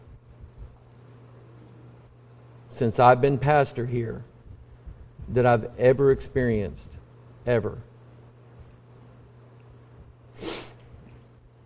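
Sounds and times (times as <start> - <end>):
low steady hum: 0.0 - 11.6
speech: 2.7 - 4.3, 5.3 - 7.9
person sneezing: 10.4 - 10.8.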